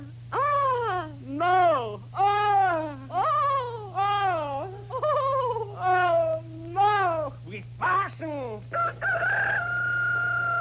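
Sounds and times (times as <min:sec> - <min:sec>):
steady low electrical hum: 0:00.0 - 0:10.5
rooster crowing: 0:08.7 - 0:10.5.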